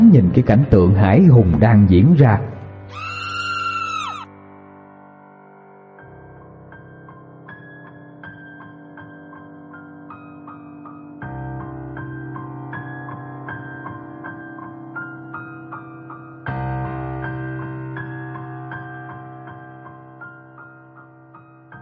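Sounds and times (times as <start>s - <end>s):
speech: 0.1s - 3.1s
piercing high-pitched scream in a horror tale: 2.9s - 4.3s.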